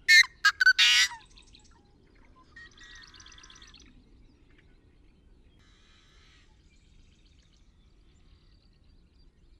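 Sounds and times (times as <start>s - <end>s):
young blackbird squealing: 0.1s - 1.2s.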